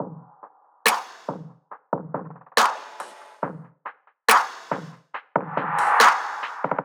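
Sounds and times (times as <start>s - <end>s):
drum loop: 0.0s - 6.8s.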